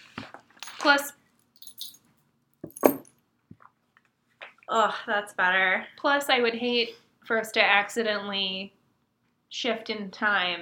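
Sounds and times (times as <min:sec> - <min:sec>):
speech: 0:00.8 - 0:01.2, 0:04.7 - 0:08.8, 0:09.5 - 0:10.6
metal pendant necklace clinking as it is removed: 0:01.6 - 0:03.1.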